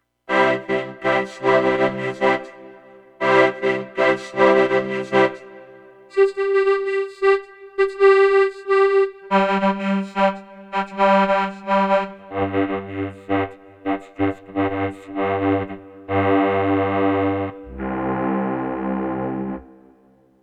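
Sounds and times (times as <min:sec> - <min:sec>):
musette accordion: 0:00.3 - 0:19.8
analog synth vocoder: 0:00.3 - 0:20.0.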